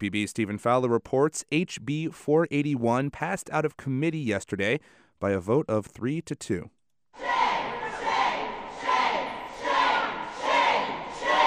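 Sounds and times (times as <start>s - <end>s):
speech: 0.0s - 7.3s
crowd of protesters jeering and booing: 7.2s - 11.4s.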